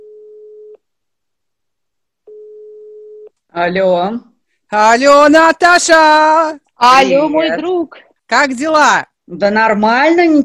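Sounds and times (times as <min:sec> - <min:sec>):
telephone line beep while a call is being placed: 0:00.0 - 0:00.8
speech: 0:03.5 - 0:10.4.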